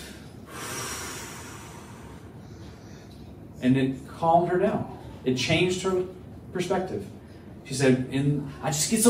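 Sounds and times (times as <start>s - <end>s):
long audible exhale: 0.0s - 3.2s
speech: 3.6s - 9.0s.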